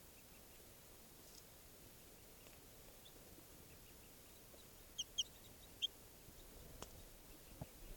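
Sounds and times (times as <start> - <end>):
wild bird chirping near camp: 0.1 - 0.8, 1.9 - 7.9.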